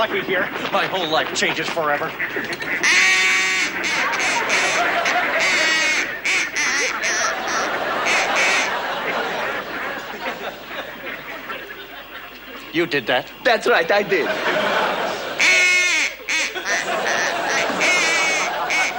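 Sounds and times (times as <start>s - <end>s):
speech: 0.0s - 5.6s, 12.7s - 14.8s
flock of ducks quacking: 0.0s - 18.9s
laughter: 3.6s - 18.9s.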